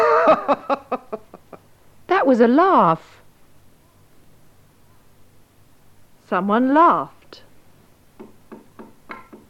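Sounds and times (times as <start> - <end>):
speech: 0.5 - 0.8, 2.3 - 3.2, 6.3 - 7.4
knocking on a door: 8.2 - 9.4.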